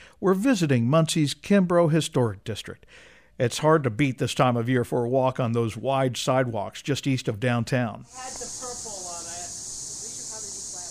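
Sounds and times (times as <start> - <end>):
speech: 0.2 - 8.9
cicadas buzzing: 8.0 - 10.8.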